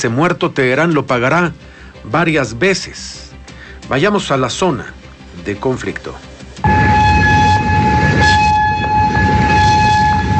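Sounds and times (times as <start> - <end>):
speech: 0.0 - 3.2, 3.9 - 6.3
rumbling noise: 0.0 - 10.3
air raid warning sirens wailing in Kuwait, Jordan or Bahrain: 6.6 - 10.3.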